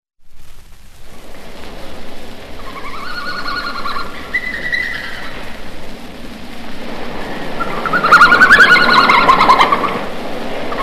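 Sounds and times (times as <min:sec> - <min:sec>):
red panda squealing and twittering: 0:02.6 - 0:05.4, 0:07.6 - 0:10.0.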